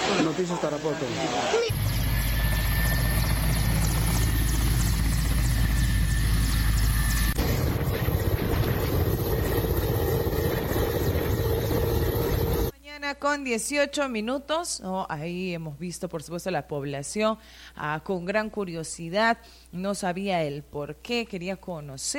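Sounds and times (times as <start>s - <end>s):
speech: 0.3s - 2.1s, 13.1s - 22.1s
helicopter turbine whine: 1.6s - 12.7s
emergency company helicopter rotor thumping during emergency landing at stadium: 1.7s - 12.7s.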